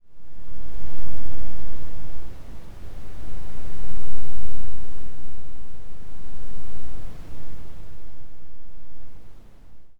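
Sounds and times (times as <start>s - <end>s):
wind in nature: 0.0s - 9.9s.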